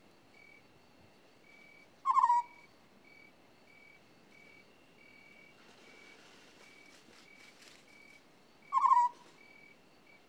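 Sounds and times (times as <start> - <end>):
African scops owl giving a purring trilled croak: 2.1 - 2.6, 8.7 - 9.2.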